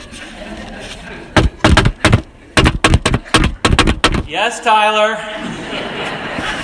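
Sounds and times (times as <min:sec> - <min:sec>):
rhythmic drumming knock on a door: 0:01.4 - 0:04.3
speech: 0:04.3 - 0:05.8
laughter: 0:05.2 - 0:06.6.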